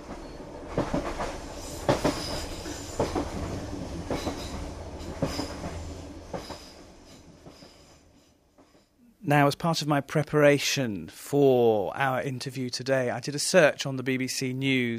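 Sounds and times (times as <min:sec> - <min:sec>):
train rumbling along the rails: 0:00.0 - 0:09.0
speech: 0:09.3 - 0:14.9.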